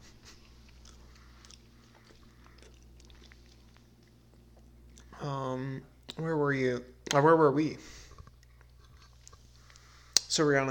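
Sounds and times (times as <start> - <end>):
chewing and crunching food: 0.1 - 5.2, 8.0 - 10.3
speech: 6.2 - 8.0, 10.4 - 10.7.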